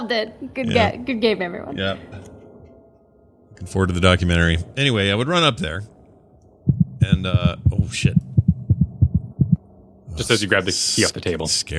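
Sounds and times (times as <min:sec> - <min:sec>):
speech: 0:00.0 - 0:02.2, 0:03.6 - 0:05.9, 0:06.6 - 0:08.4, 0:10.2 - 0:11.7
faint hum: 0:00.0 - 0:11.7
deep heartbeat sound effect: 0:06.7 - 0:09.6.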